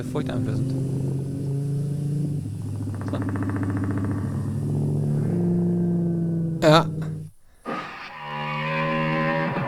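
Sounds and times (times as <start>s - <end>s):
speech: 0.0s - 1.1s, 3.1s - 3.6s, 6.6s - 7.0s
motorcycle engine rumbling: 0.0s - 9.6s.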